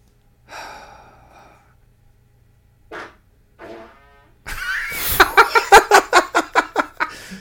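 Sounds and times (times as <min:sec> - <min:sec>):
short buzzy fart: 0:02.9 - 0:04.4
loud rhythmic pulsing laughter: 0:04.5 - 0:07.3.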